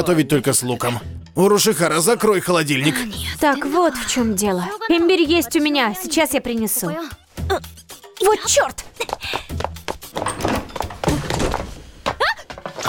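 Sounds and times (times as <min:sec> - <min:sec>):
speech: 0:00.0 - 0:09.4
person tumbling down stairs in an animated scene: 0:10.0 - 0:12.8.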